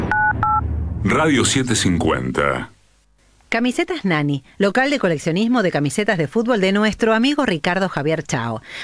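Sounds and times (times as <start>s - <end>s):
touch-tone beeps of a telephone number being dialed: 0.1s - 0.6s
speech: 1.0s - 2.8s, 3.5s - 8.8s.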